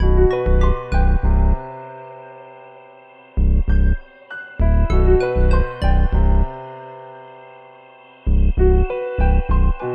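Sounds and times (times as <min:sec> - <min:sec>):
West Coast melody loop at 98 BPM in E minor: 0:00.0 - 0:01.6, 0:03.4 - 0:04.0, 0:04.6 - 0:06.6, 0:08.3 - 0:09.8.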